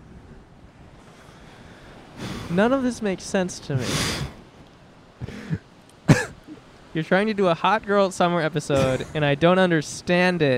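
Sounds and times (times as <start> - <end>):
ocean waves crashing on the shore: 0.0 - 10.5
breezy hiss: 2.1 - 10.5
speech: 2.5 - 4.4, 7.0 - 10.5.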